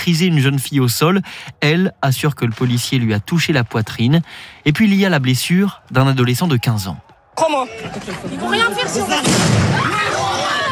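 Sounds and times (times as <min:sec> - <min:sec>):
speech: 0:00.0 - 0:10.2
people shouting: 0:05.7 - 0:10.6
stun grenade exploding outside a high school: 0:09.2 - 0:09.8.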